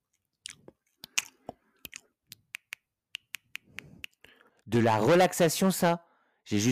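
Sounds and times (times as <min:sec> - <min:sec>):
ASMR wet mouth clicks and pops: 0:00.4 - 0:04.4
speech: 0:04.7 - 0:06.6.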